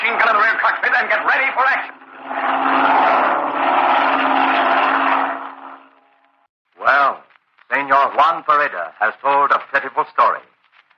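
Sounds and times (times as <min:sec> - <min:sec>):
black propeller airplane engine droning: 0:00.0 - 0:06.5
speech: 0:00.1 - 0:02.8, 0:08.1 - 0:10.5.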